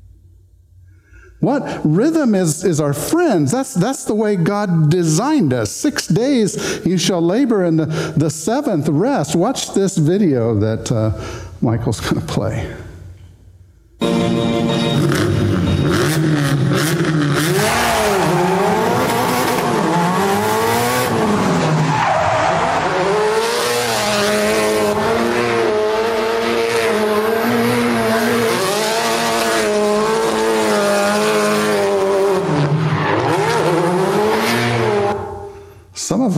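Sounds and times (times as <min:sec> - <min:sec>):
speech: 0:01.4 - 0:12.8
car engine revving while driving fast: 0:14.0 - 0:35.5
car tires squealing: 0:14.9 - 0:35.4.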